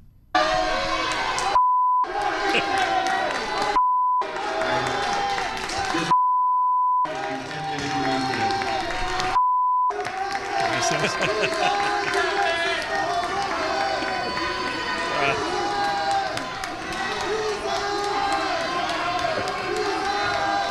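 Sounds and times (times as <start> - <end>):
protest crowd shouting and yelling in a council room: 0.4 - 6.2, 7.0 - 20.7
bleep tones: 1.6 - 2.1, 6.1 - 7.1, 9.4 - 9.9
laughter: 2.1 - 3.8, 10.3 - 15.4.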